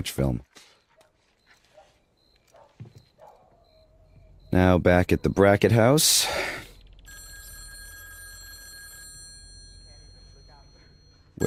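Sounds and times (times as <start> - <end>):
speech: 0.0 - 0.7, 4.5 - 6.6
telephone bell ringing: 6.2 - 11.4.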